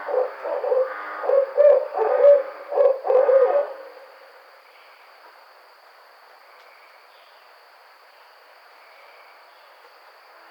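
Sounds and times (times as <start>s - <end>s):
barred owl hooting in loud rounded notes: 0.0s - 4.2s
faint high hum: 0.0s - 10.4s.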